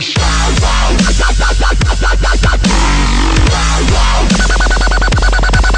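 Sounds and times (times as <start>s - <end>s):
drop the bass sound effect: 0.2s - 5.7s.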